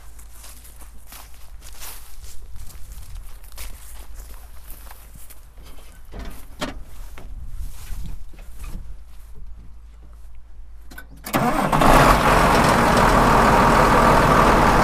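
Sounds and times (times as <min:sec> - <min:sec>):
faint handling noises: 0:01.7 - 0:11.2
tractor engine cranking, starting and running: 0:05.6 - 0:08.8, 0:10.8 - 0:14.8.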